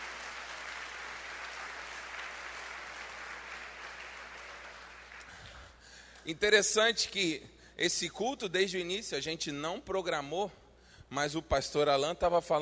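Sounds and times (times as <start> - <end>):
large crowd applauding loudly: 0.0 - 5.4
speech: 6.3 - 12.6.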